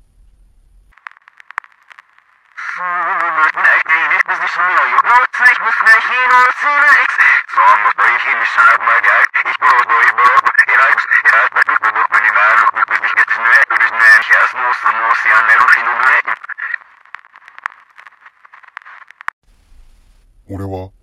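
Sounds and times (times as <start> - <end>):
car stereo radio playing tinny narrow-band broadcast: 2.6 - 16.8
speech: 5.7 - 10.3, 20.5 - 21.0.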